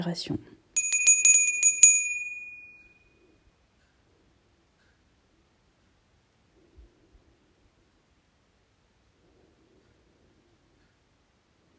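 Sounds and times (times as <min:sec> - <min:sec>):
small meditation bell ringing: 0:00.8 - 0:03.4.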